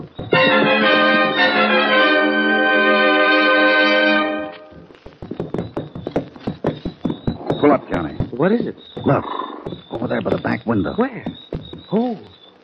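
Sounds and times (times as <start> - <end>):
horse hooves clip-clopping at a walking pace: 0.0 - 0.7, 4.6 - 12.4
sustained musical chord: 0.3 - 4.7
speech: 8.4 - 12.3.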